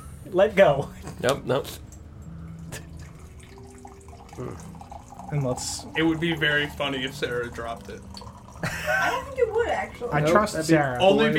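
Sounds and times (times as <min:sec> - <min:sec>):
speech: 0:00.2 - 0:01.9, 0:04.4 - 0:04.7, 0:05.3 - 0:11.3
water poured into a container, tone climbing as the vessel fills: 0:02.3 - 0:11.3.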